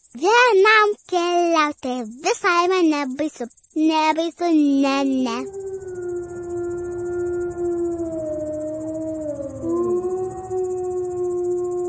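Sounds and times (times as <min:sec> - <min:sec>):
speech: 0:00.1 - 0:06.3
wolves howling: 0:05.3 - 0:11.8.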